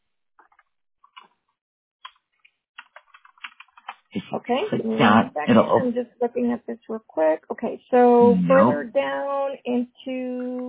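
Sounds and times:
typing and clicking on a computer keyboard: 2.8 - 4.0
speech: 4.3 - 10.6.

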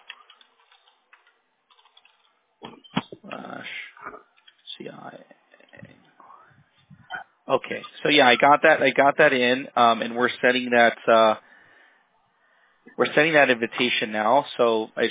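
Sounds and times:
typing on a computer keyboard: 0.0 - 2.4
speech: 7.5 - 11.4, 13.0 - 15.0.

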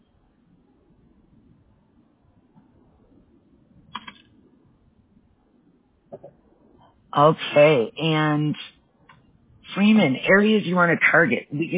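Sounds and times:
steady low hum: 0.0 - 11.7
computer keyboard clicks during copy and paste: 3.9 - 4.3
speech: 7.1 - 8.7, 9.8 - 11.7.

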